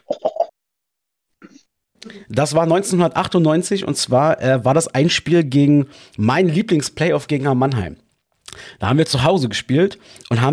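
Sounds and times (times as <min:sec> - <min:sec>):
person coughing: 0:00.0 - 0:00.5, 0:01.4 - 0:01.7
soft throat sounds: 0:01.4 - 0:02.2
speech: 0:02.1 - 0:08.0, 0:08.6 - 0:10.5.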